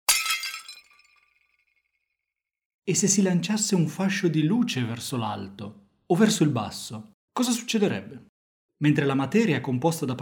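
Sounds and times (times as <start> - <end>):
thrown plate hitting the ground and shattering: 0.0 - 1.4
speech: 2.9 - 10.1.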